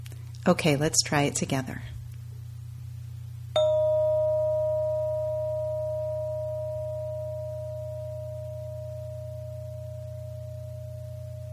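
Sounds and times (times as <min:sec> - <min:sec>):
speech: 0:00.4 - 0:02.0
constant low hum: 0:01.9 - 0:11.5
long steady pure tone begun with a soft strike: 0:03.4 - 0:11.5.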